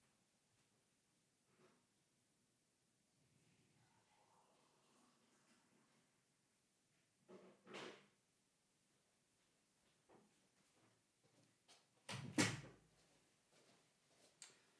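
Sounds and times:
door swinging and shutting with a solid thud: 12.1s - 12.8s.

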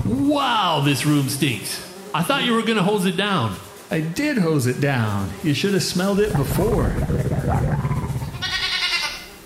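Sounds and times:
speech: 0.1s - 7.9s
goat bleating: 7.8s - 9.3s.

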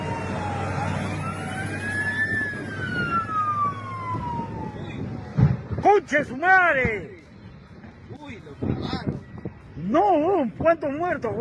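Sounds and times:
emergency siren wailing: 0.0s - 5.8s
speech: 6.0s - 7.2s, 9.9s - 11.3s.

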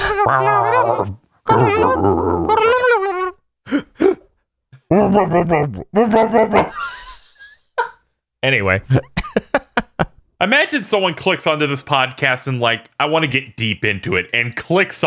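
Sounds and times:
voices imitating growling, whimpering animal sounds: 0.0s - 3.4s, 4.9s - 6.9s
speech: 0.2s - 3.0s, 4.9s - 6.9s, 8.4s - 15.0s
laughter: 4.9s - 7.5s, 8.9s - 10.1s.

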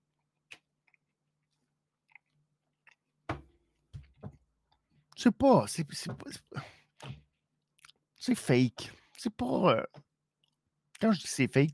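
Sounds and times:
crunchy chewing of food: 0.0s - 3.2s
speech: 5.2s - 6.8s, 8.2s - 10.0s, 11.0s - 11.7s.

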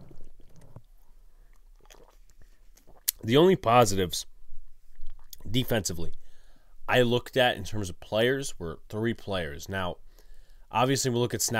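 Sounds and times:
person sipping a drink: 0.0s - 3.2s, 4.9s - 5.4s
person swallowing: 0.0s - 3.2s, 4.9s - 5.4s
wet mouth clicks: 1.5s - 3.2s, 4.9s - 5.5s
speech: 3.2s - 4.3s, 5.5s - 6.2s, 6.9s - 10.0s, 10.7s - 11.5s.

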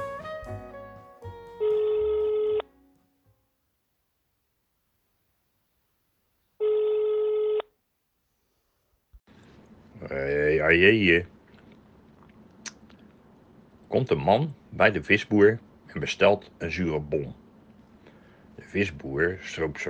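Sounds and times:
telephone ringing with loud electronic bursts: 1.4s - 2.7s, 6.6s - 7.7s
speech: 10.1s - 11.3s, 14.0s - 17.4s, 18.7s - 19.8s.

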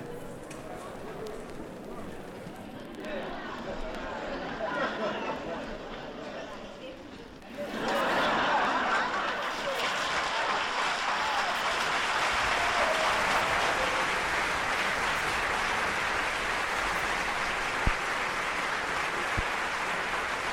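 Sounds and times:
theatre audience murmuring and chuckling: 0.0s - 20.5s
theatre audience laughing loudly: 3.1s - 6.9s, 7.5s - 20.5s
theatre audience clapping: 8.8s - 20.5s.

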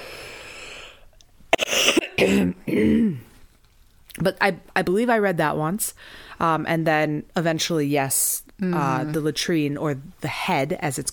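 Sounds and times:
harsh coughing: 1.5s - 3.3s
speech: 2.2s - 3.3s, 4.2s - 11.1s.

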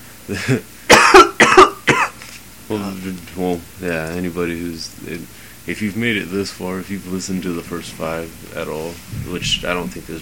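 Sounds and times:
speech: 0.3s - 1.2s, 2.7s - 10.2s
person coughing: 0.4s - 2.2s.

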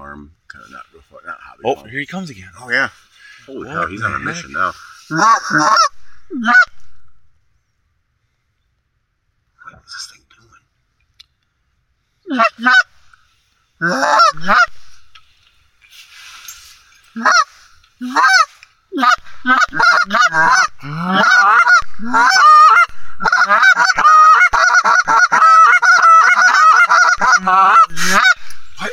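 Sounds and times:
speech: 0.2s - 6.8s, 9.9s - 10.2s, 12.3s - 12.9s, 13.8s - 14.8s, 17.2s - 26.2s, 27.3s - 28.9s
goose honking: 4.0s - 6.8s, 13.8s - 14.8s, 17.2s - 28.9s.

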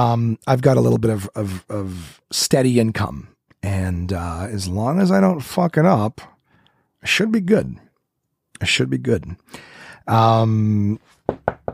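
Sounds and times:
speech: 0.0s - 6.3s, 7.0s - 7.8s, 8.6s - 11.1s
knocking on a wooden surface: 11.2s - 11.7s.

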